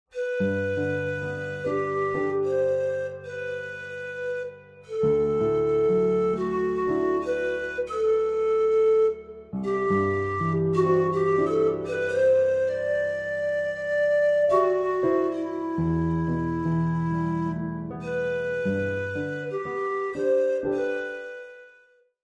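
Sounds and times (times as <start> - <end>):
piano: 0.1 - 22.0
pan flute: 0.1 - 22.1.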